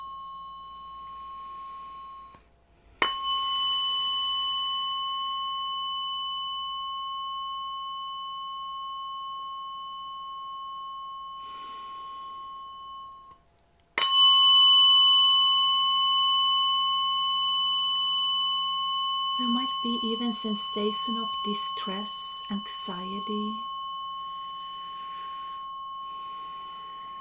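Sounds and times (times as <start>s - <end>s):
weighted metal tuning fork struck on the sternum ringing: 0.0s - 27.1s
speech: 19.4s - 23.7s.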